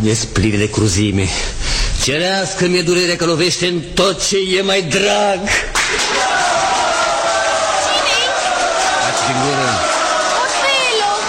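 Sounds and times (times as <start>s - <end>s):
speech: 0.0s - 6.1s
audience applause: 5.8s - 11.2s.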